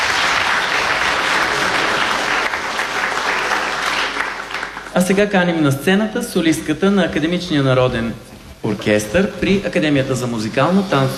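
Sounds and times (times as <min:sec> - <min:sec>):
large audience applauding: 0:00.0 - 0:05.3
speech: 0:05.0 - 0:11.1.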